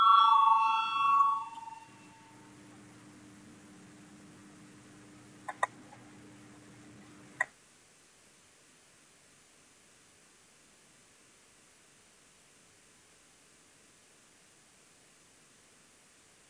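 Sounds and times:
electronic voting bell chiming in the Saeima parliament chamber in Latvia: 0.0s - 2.4s
quiet steady hum: 0.0s - 8.9s.

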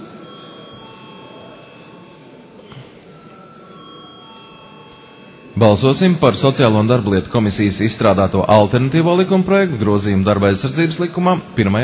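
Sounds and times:
parliament chamber electric bell calling members to a vote: 0.0s - 9.1s
murmur of voices: 0.0s - 11.8s
speech: 5.6s - 11.8s.

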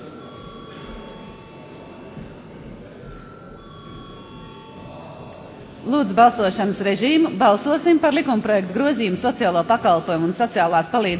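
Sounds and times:
electric bell ringing in a parliament chamber before a vote: 0.0s - 7.8s
low murmur of room noise: 0.0s - 11.1s
speech: 5.9s - 11.1s.

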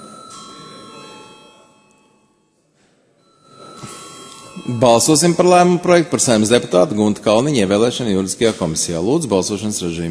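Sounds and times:
chamber bell in the Latvian Saeima ringing before a vote: 0.0s - 2.5s, 3.2s - 6.8s
speech: 4.6s - 10.0s.

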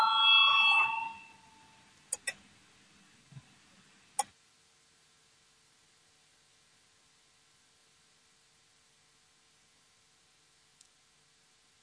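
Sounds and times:
parliament voting bell ringing: 0.0s - 1.8s
sharp clicks: 2.1s - 2.4s.

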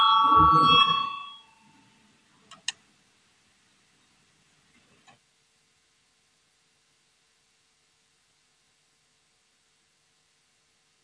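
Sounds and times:
parliamentary electronic voting bell ringing: 0.0s - 1.6s.

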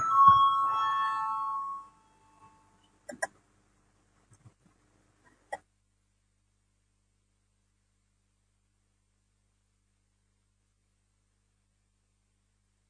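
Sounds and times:
parliament voting bell ringing with a steady electronic tone: 0.0s - 2.8s.

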